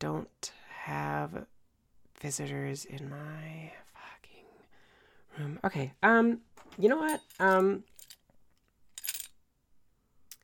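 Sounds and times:
speech: 0:00.1 - 0:01.5, 0:02.2 - 0:04.2, 0:05.4 - 0:07.9
set of keys dropping onto a bed: 0:06.6 - 0:09.4.

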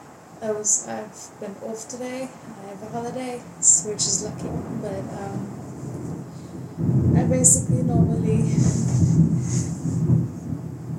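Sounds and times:
heavy rain: 0:00.0 - 0:10.9
speech: 0:00.4 - 0:05.6, 0:07.3 - 0:09.8
deep rumble: 0:02.1 - 0:10.9.

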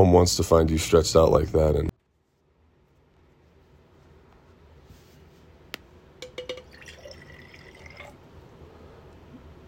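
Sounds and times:
speech: 0:00.0 - 0:02.0
water poured from a glass: 0:06.2 - 0:08.2.

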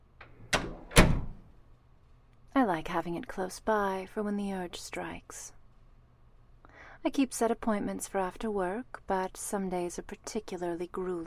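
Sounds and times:
door to a playroom opening: 0:00.2 - 0:01.5
speech: 0:02.6 - 0:05.6, 0:07.0 - 0:11.2.

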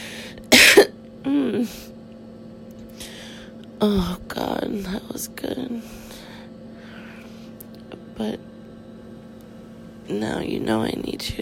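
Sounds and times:
person coughing: 0:00.5 - 0:01.5
speech: 0:01.2 - 0:02.0, 0:03.8 - 0:06.3, 0:08.2 - 0:08.5, 0:10.1 - 0:11.4.

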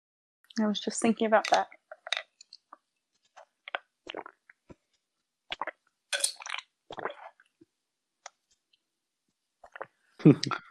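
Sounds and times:
speech: 0:00.6 - 0:01.8, 0:10.2 - 0:10.6
person gulping and swallowing water while drinking: 0:01.4 - 0:04.9, 0:05.5 - 0:07.6, 0:09.6 - 0:10.6.

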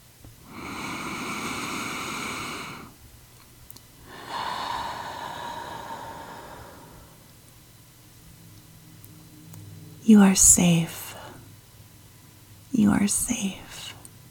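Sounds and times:
slow deep breathing during a calming exercise: 0:00.4 - 0:03.0, 0:04.0 - 0:07.5
speech: 0:10.1 - 0:11.0, 0:12.9 - 0:13.9.

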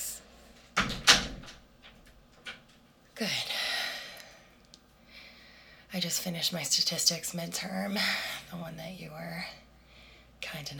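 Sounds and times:
door closing: 0:00.8 - 0:02.7
speech: 0:03.2 - 0:03.5, 0:05.9 - 0:09.6, 0:10.5 - 0:10.7.

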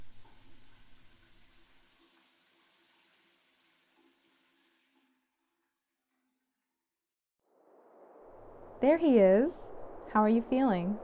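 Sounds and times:
shower water running: 0:00.0 - 0:05.3
speech: 0:08.8 - 0:11.0.

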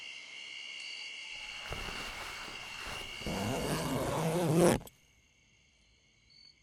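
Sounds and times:
high chirring of insects: 0:00.0 - 0:06.6
small tent's zipper rasping shut: 0:01.4 - 0:04.9.

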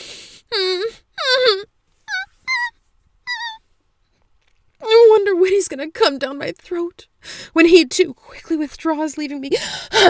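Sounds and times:
woman whimpering: 0:00.5 - 0:02.7, 0:03.3 - 0:03.6
speech: 0:05.6 - 0:10.0.

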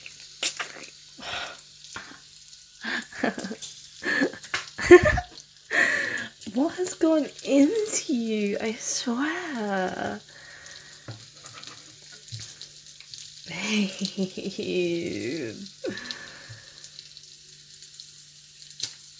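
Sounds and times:
breakfast food sizzling while frying: 0:00.0 - 0:19.1
speech: 0:03.2 - 0:03.6, 0:06.6 - 0:10.3, 0:13.7 - 0:16.0
stirring: 0:11.1 - 0:12.4.

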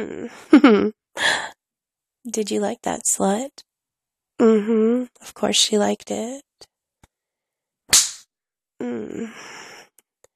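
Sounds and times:
speech: 0:00.0 - 0:01.4, 0:02.2 - 0:03.7, 0:04.4 - 0:06.5, 0:08.8 - 0:09.7
sharp hand slap on a woman's bare skin: 0:07.9 - 0:08.3.

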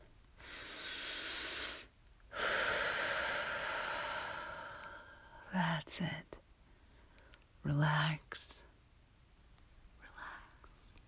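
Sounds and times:
slow deep breath: 0:00.4 - 0:05.4
speech: 0:05.5 - 0:06.3, 0:07.6 - 0:08.6.

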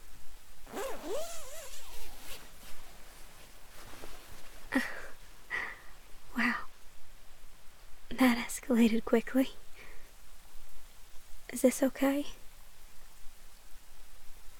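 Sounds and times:
faint rustling: 0:00.0 - 0:06.2
zipper being pulled up: 0:00.6 - 0:03.2
speech: 0:08.2 - 0:09.6, 0:11.6 - 0:12.4.

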